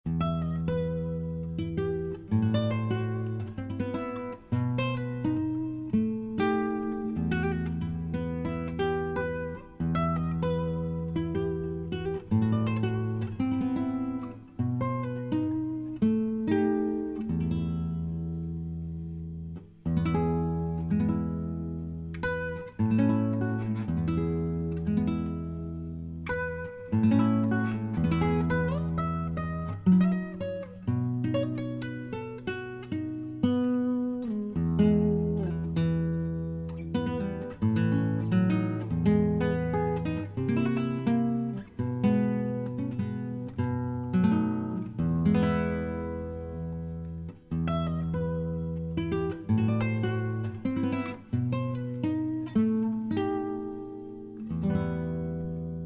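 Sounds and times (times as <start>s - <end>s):
Spanish acoustic music: 0.0s - 55.8s.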